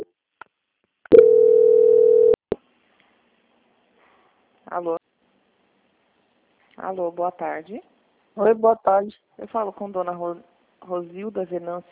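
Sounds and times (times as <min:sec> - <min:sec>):
telephone transfer tone as a bank call is passed to quality control: 0:01.1 - 0:02.4
speech: 0:04.7 - 0:05.0, 0:06.8 - 0:11.9.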